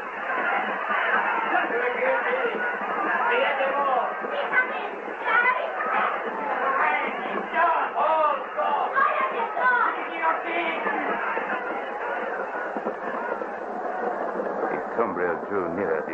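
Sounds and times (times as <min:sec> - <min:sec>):
angry crowd crying out in fury: 0:00.0 - 0:15.0.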